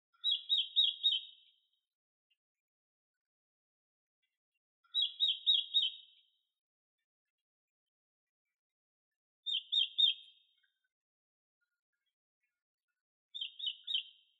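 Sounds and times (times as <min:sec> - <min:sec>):
red-billed leiothrix singing: 0:00.1 - 0:02.5, 0:04.2 - 0:07.5, 0:09.4 - 0:14.3.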